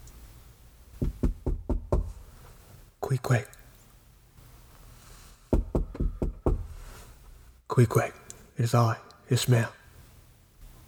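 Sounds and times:
firm knocking on a locked wooden door of an inn room: 0:01.0 - 0:02.2, 0:05.5 - 0:06.7
speech: 0:03.1 - 0:03.6, 0:07.8 - 0:09.8.

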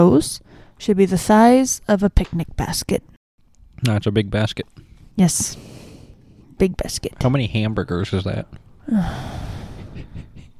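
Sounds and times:
speech: 0:00.0 - 0:03.2, 0:03.8 - 0:05.9, 0:06.6 - 0:09.5
person yawning: 0:08.8 - 0:09.8.

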